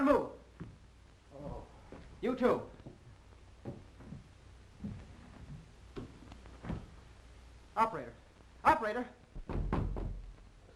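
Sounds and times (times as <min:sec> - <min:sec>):
speech: 0:00.1 - 0:00.4, 0:02.2 - 0:02.8, 0:07.8 - 0:09.6
dull heavy knocks on a door: 0:09.4 - 0:10.3
low thud: 0:09.4 - 0:10.3.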